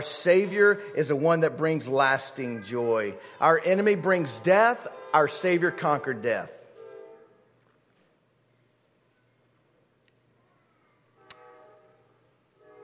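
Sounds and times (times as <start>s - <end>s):
speech: 0.0s - 6.6s
train horn blowing: 6.8s - 7.5s, 11.2s - 12.8s
sharp click: 11.2s - 11.5s.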